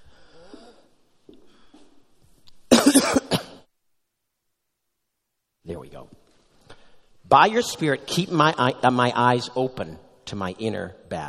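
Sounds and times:
speaker clearing throat during a Bible reading and prayer: 0:02.7 - 0:03.7
speaker coughing harshly: 0:02.7 - 0:03.7
speech: 0:07.3 - 0:11.2.

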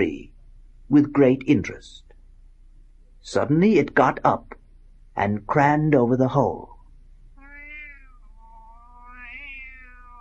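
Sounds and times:
speech: 0:00.9 - 0:02.0, 0:03.2 - 0:04.6, 0:05.2 - 0:06.7
white tomcat meowing in the lower boughs of an ash tree: 0:07.4 - 0:10.1.

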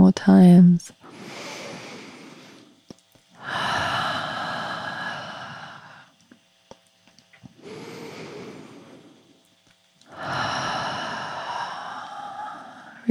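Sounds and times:
speech: 0:00.1 - 0:01.0
person breathing deeply in through the nose and out through the mouth: 0:01.0 - 0:02.8, 0:03.4 - 0:06.2, 0:07.6 - 0:09.4, 0:10.1 - 0:13.0.

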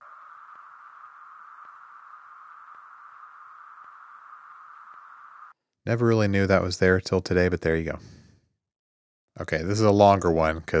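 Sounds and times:
white noise hiss: 0:00.0 - 0:05.5
speech: 0:05.8 - 0:08.2, 0:09.5 - 0:10.7.

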